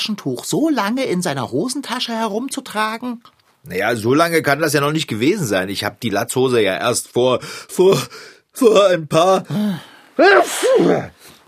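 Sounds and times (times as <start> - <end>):
speech: 0.0 - 11.2
loud sneeze: 10.2 - 11.3.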